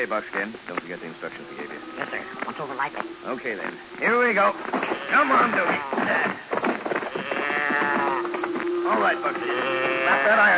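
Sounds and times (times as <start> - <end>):
speech: 0.0 - 6.6, 7.8 - 10.5
cattle bawling and mooing during a branding: 1.3 - 6.1, 7.1 - 10.5.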